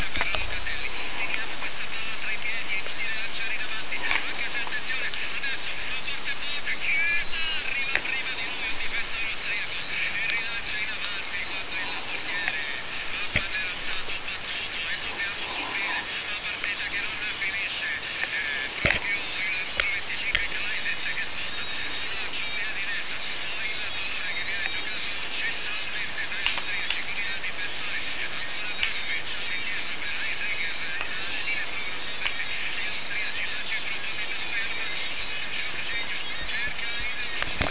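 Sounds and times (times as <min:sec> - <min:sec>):
very faint medium wave radio reception on 657 kHz: 0:00.0 - 0:37.6.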